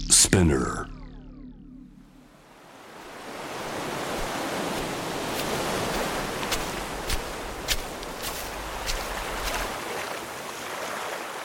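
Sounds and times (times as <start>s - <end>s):
speech: 0.2s - 0.9s
waves washing onto a shore: 2.8s - 11.4s.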